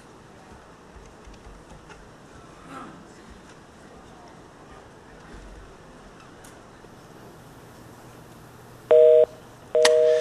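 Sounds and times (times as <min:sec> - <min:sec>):
two steady electronic phone line tones: 0:08.9 - 0:10.1.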